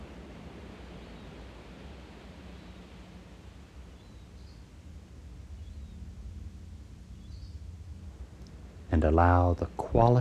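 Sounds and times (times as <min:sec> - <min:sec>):
ocean surf rolling up a beach: 0:00.0 - 0:03.7
faint bird chirps: 0:02.5 - 0:02.9, 0:03.9 - 0:04.7, 0:05.5 - 0:06.1, 0:07.1 - 0:07.7
speech: 0:08.9 - 0:10.1.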